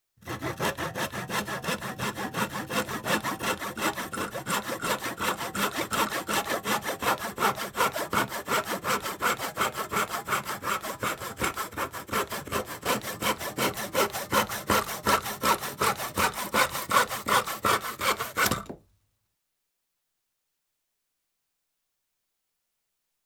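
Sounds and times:
tenon saw cutting a small piece of wood: 0.2s - 18.8s.

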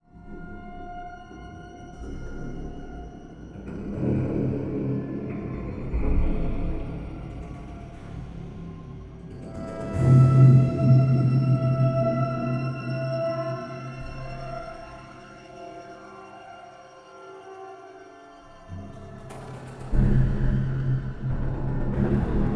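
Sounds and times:
dark ghostly ambience: 1.2s - 22.5s.

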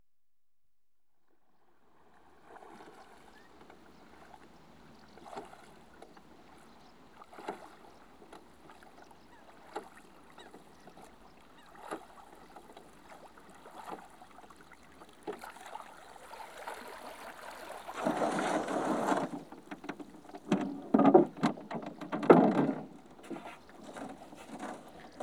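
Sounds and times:
one man rowing a rowing boat: 1.9s - 25.2s.

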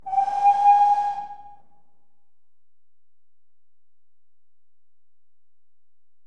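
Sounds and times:
GWR steam locomotive engine whistle: 0.0s - 1.7s.

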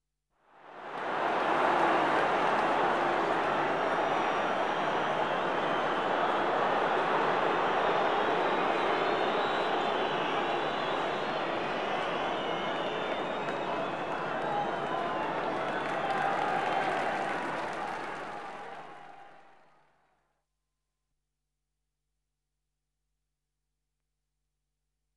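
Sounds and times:
football crowd booing: 0.9s - 19.7s
whistle: 8.1s - 14.6s.

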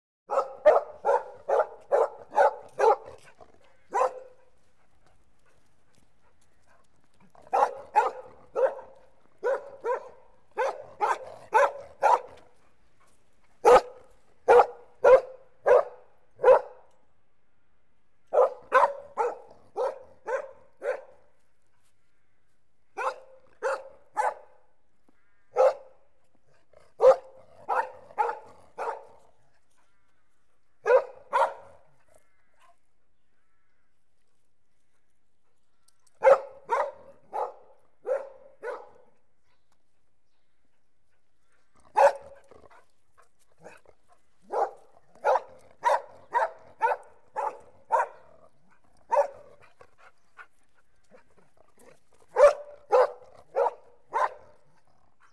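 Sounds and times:
collie dog barking: 0.3s - 4.4s, 7.5s - 12.4s, 13.6s - 16.8s, 18.3s - 21.2s, 23.0s - 24.6s, 25.6s - 26.0s, 27.0s - 29.2s, 30.8s - 31.8s, 36.2s - 39.1s, 42.0s - 42.4s, 44.4s - 48.3s, 49.1s - 49.6s, 52.3s - 54.6s.

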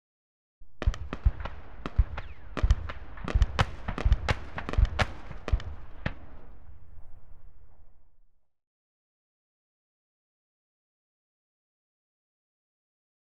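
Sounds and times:
Scimitar firing on automatic: 0.7s - 8.0s.

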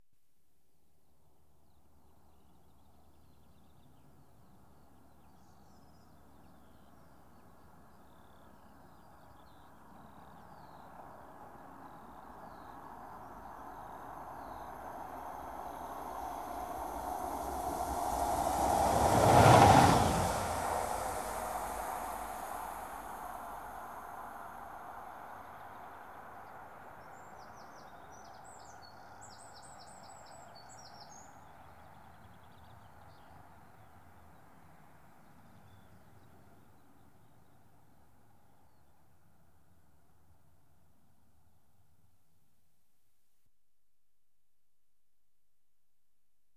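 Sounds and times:
single diesel train passing: 13.2s - 25.5s.

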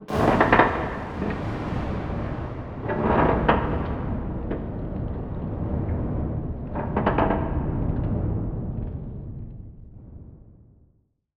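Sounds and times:
metallic texture: 0.0s - 8.5s.

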